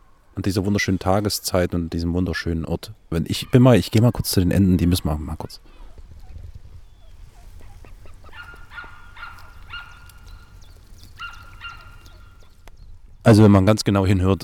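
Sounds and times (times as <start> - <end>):
speech: 0.4 - 5.8, 13.2 - 14.4
rustling: 5.7 - 13.0
ducks quacking with nasal calls: 7.4 - 10.6, 11.2 - 12.5.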